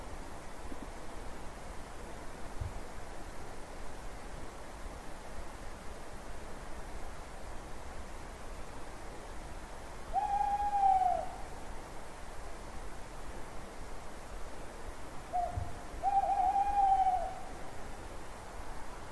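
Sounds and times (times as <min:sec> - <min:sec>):
faint background hiss: 0:00.0 - 0:19.1
owl hooting: 0:10.1 - 0:11.5, 0:15.3 - 0:17.5.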